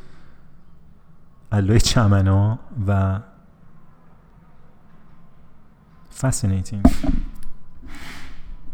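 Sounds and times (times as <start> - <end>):
speech: 1.5 - 3.3, 6.2 - 7.1
upturned plastic bowl microphone stand bumping and scraping across a tabletop: 6.9 - 7.4.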